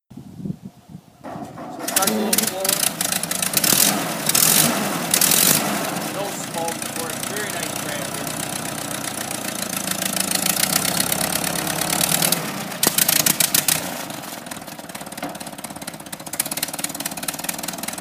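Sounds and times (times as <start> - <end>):
antique tractor engine: 1.1 - 17.9.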